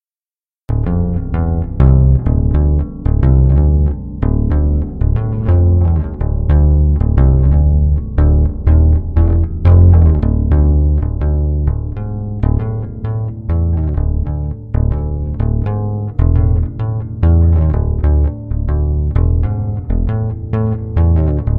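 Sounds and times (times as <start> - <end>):
bass guitar sample: 0.7 - 21.5.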